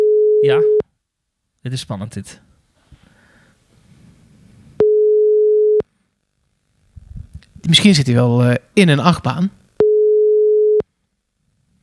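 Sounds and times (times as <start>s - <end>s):
telephone call tone as a call is placed: 0.0s - 0.8s, 4.8s - 5.8s, 9.8s - 10.8s
speech: 0.4s - 0.8s, 1.6s - 2.5s, 7.6s - 9.6s
faint low rumbling: 6.8s - 7.7s.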